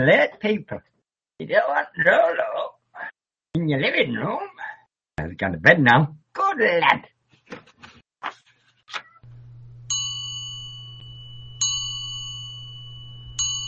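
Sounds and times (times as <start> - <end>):
speech: 0.0 - 4.6, 5.2 - 8.4
low constant hum: 9.3 - 13.6
bell ringing: 9.8 - 13.6.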